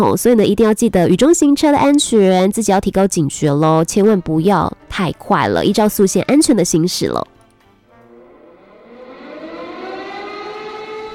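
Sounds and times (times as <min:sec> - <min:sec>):
speech: 0:00.0 - 0:07.3
siren wail opening a song: 0:08.0 - 0:11.1.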